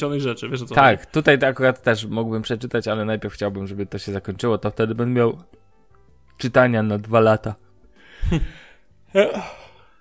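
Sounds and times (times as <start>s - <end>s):
speech: 0.0s - 5.6s, 6.4s - 7.6s, 8.2s - 9.6s
person yawning: 8.4s - 9.9s.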